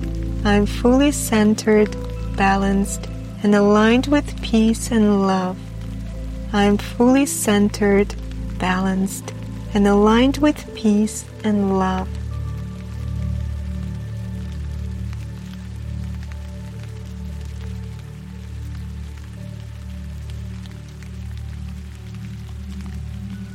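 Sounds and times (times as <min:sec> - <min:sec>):
soft sustained low drone humming: 0:00.0 - 0:18.4
rain pattering: 0:00.0 - 0:23.5
speech: 0:00.4 - 0:05.7, 0:06.5 - 0:12.2.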